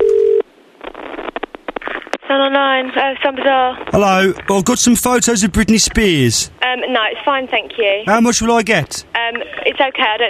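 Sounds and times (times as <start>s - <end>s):
telephone dial tone through the handset: 0.0s - 0.4s
speech: 2.5s - 10.2s.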